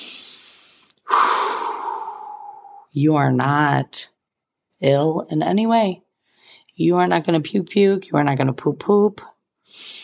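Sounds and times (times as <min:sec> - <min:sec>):
person deep breathing: 0:00.0 - 0:02.9
speech: 0:02.9 - 0:04.1, 0:04.8 - 0:06.0, 0:06.8 - 0:10.0.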